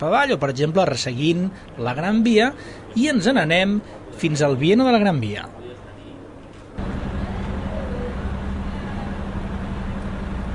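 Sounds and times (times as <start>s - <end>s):
speech: 0.0s - 5.7s
city traffic roaring along a street near a main avenue: 0.0s - 10.5s
people passing on a city street: 1.4s - 4.7s, 5.3s - 10.5s
low hum: 6.8s - 10.5s.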